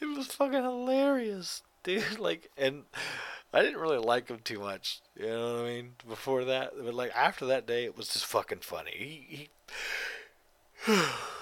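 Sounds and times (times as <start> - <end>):
speech: 0.2 - 10.1, 10.8 - 11.4
person yawning: 10.8 - 11.4.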